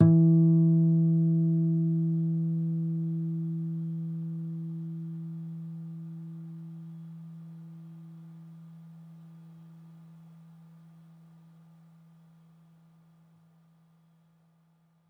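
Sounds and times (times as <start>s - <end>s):
classical guitar: 0.0s - 7.0s.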